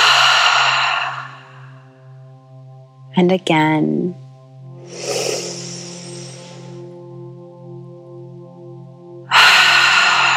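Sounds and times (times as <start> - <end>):
deep inhale through the nose and exhale through the mouth in guided breathwork: 0.0 - 2.1, 4.8 - 7.0, 9.3 - 10.3
speech: 3.2 - 4.2.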